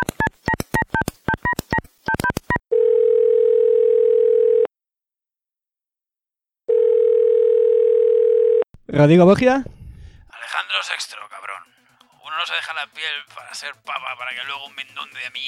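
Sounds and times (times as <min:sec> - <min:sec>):
telephone keypad two-tone beeps: 0:00.0 - 0:02.6
telephone buzzing call tone: 0:02.7 - 0:04.7, 0:06.7 - 0:08.7
speech: 0:09.0 - 0:09.8, 0:10.7 - 0:11.3, 0:12.4 - 0:15.4.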